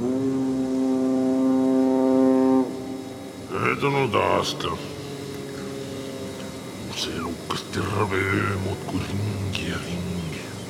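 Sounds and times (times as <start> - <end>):
deep foghorn blast: 0.0 - 6.9
speech: 3.8 - 4.9, 7.0 - 10.4.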